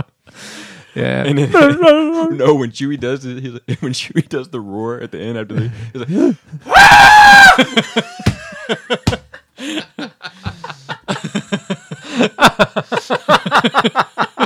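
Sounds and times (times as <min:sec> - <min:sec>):
speech: 0:01.0 - 0:10.4, 0:12.4 - 0:14.2
goat screaming: 0:06.7 - 0:07.6
person laughing: 0:07.4 - 0:14.4.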